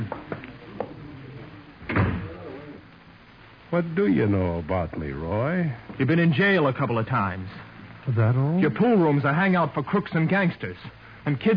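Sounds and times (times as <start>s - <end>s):
door swinging shut with a solid thud: 1.8s - 2.3s
speech: 3.7s - 11.5s.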